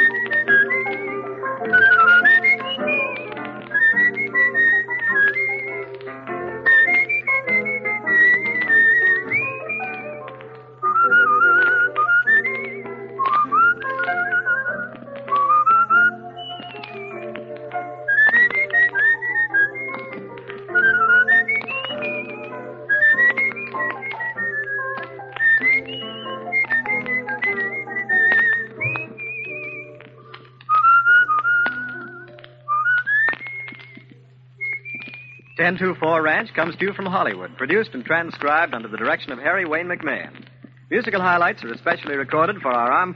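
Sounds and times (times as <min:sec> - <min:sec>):
person whistling a bright melody: 0:00.0 - 0:05.9, 0:06.5 - 0:10.2, 0:10.8 - 0:34.0, 0:34.6 - 0:35.9
steady instrumental accompaniment: 0:00.0 - 0:40.8
speech: 0:35.7 - 0:43.1.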